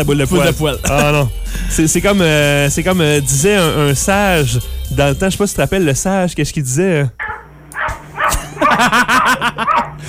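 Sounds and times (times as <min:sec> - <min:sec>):
speech: 0:00.0 - 0:07.3, 0:08.6 - 0:10.0
laughter: 0:00.2 - 0:01.3, 0:08.3 - 0:10.0
cat barking like a dog: 0:07.2 - 0:10.0.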